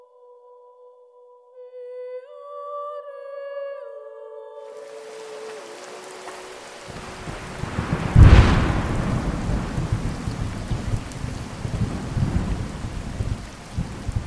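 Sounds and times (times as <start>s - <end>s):
dense steady rain during a heavy thunderstorm: 4.8s - 14.2s
thunderclap rolling into a deep rumble: 5.1s - 14.2s.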